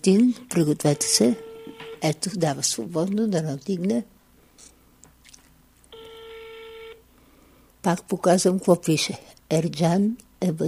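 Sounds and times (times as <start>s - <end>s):
speech: 0.0s - 4.2s, 7.8s - 10.6s
steady telephone dialing tone: 0.8s - 2.0s, 5.9s - 7.0s.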